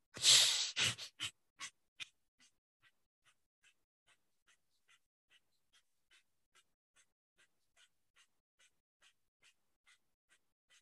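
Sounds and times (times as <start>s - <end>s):
airy breath drawn through the nose: 0.2s - 1.3s
short nasal puffs or sniffs: 0.2s - 1.3s.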